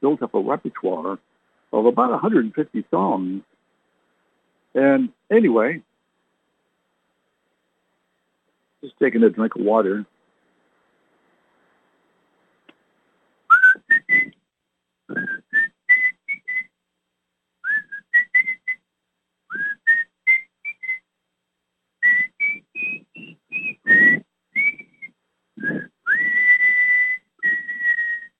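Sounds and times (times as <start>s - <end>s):
speech: 0.0s - 3.5s, 4.7s - 5.9s, 8.8s - 10.1s
person whistling a tune: 13.5s - 14.3s, 15.1s - 16.7s, 17.7s - 18.8s, 19.5s - 21.0s, 22.0s - 28.3s.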